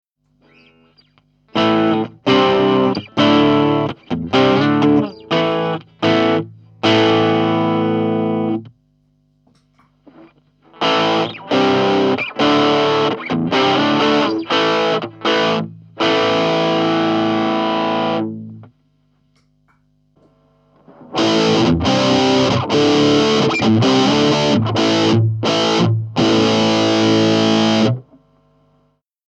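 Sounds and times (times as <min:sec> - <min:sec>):
electric guitar through distortion and drive pedals: 0:00.4 - 0:08.7, 0:09.5 - 0:18.8, 0:20.2 - 0:28.4.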